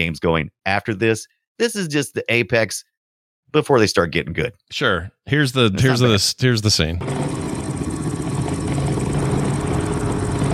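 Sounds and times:
speech: 0.0s - 2.9s, 3.5s - 7.6s
motorcycle engine idling in video game: 7.0s - 10.5s.

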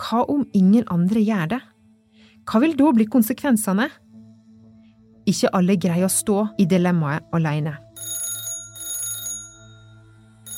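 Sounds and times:
speech: 0.1s - 1.7s, 2.4s - 4.0s, 5.3s - 7.8s
old-fashioned telephone bell ringing in a home: 7.9s - 10.5s.

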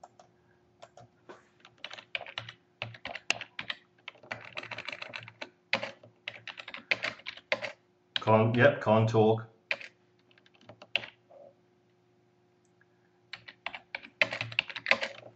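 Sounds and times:
fingers typing on a computer keyboard: 0.0s - 8.7s, 9.7s - 11.2s, 13.3s - 15.3s
speech: 8.3s - 9.5s.

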